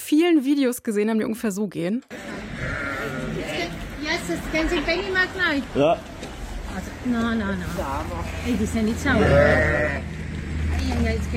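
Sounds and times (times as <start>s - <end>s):
speech: 0.1s - 2.4s, 4.1s - 6.2s, 6.8s - 10.2s, 10.8s - 11.3s
flock of sheep bleating: 2.1s - 3.9s, 9.1s - 10.1s.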